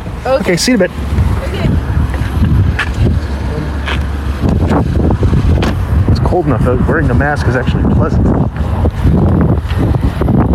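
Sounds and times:
wind buffeting a microphone outdoors: 0.0 - 10.5
speech: 0.2 - 1.2, 6.4 - 8.6.

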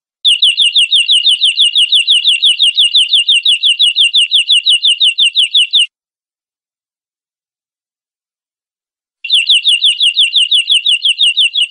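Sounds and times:
canary in steady trilling song: 0.2 - 5.9, 9.2 - 11.7.

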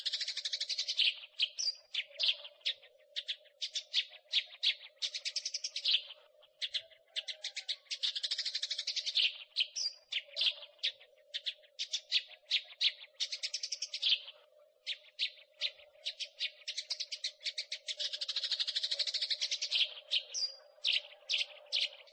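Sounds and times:
Eurasian tree sparrows chirping in chorus: 0.0 - 22.1.

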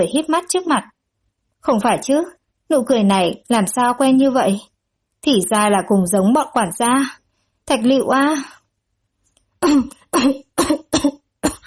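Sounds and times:
speech: 0.0 - 1.0, 1.6 - 8.6, 9.6 - 11.2
person coughing hard, struggling to breathe: 9.6 - 11.6.

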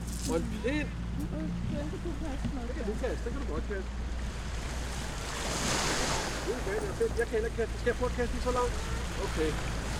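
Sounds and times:
speech: 0.3 - 4.1, 6.5 - 9.8
sea waves washing onto the shore: 3.2 - 9.9.

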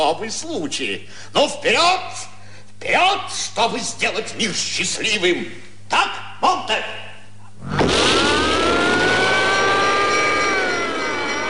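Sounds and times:
speech: 0.0 - 7.0
car engine roaring as the car is driven fast through sharp turns: 7.6 - 11.4.

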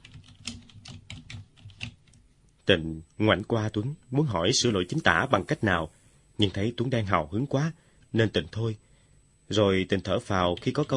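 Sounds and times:
slow hesitant typing on a computer keyboard: 0.0 - 2.2
speech: 2.7 - 8.9, 9.5 - 10.9.

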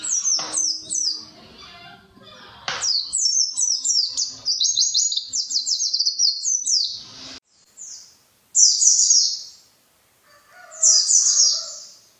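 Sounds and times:
white-eye song: 0.0 - 7.4
faint low background noise: 0.0 - 12.1.

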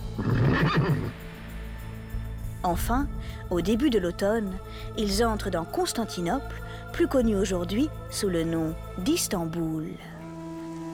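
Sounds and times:
horse whinnying on a long overland journey in sweltering heat: 0.1 - 1.2
speech: 0.7 - 1.2, 2.6 - 10.1.

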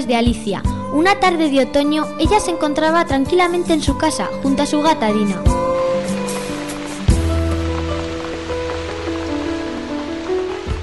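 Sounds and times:
speech: 0.0 - 5.6
rain falling on an autumn afternoon at home: 5.5 - 10.8.

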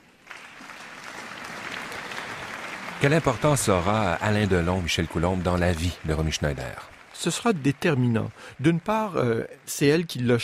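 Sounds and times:
audience applause at a tribute evening for an actress's 70th birthday: 0.0 - 10.4
speech: 3.0 - 10.4.

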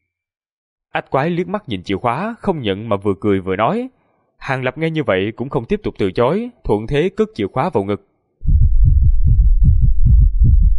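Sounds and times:
speech: 1.0 - 8.1
rapid pounding heartbeat sound effect: 8.4 - 10.7.

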